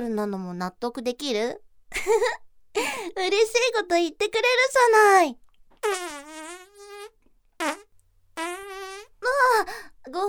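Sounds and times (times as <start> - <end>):
speech: 0.0 - 6.4, 7.6 - 7.8, 9.3 - 10.2
person letting out loud tonal buzzing farts: 5.8 - 9.2.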